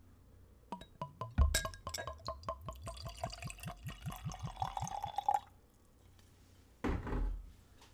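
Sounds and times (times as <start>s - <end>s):
glass clink: 0.8s - 5.4s
liqueur glugging from a bottle into a glass: 1.0s - 5.5s.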